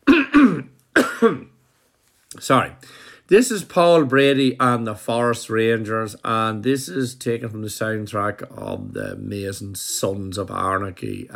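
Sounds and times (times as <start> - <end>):
man clearing his throat gravelly: 0.0 - 1.6
speech: 1.2 - 1.5, 2.3 - 11.3.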